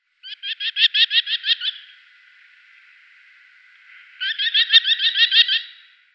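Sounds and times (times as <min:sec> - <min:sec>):
Merlin Falco columbarius calling: 0:00.2 - 0:02.3, 0:03.7 - 0:06.0.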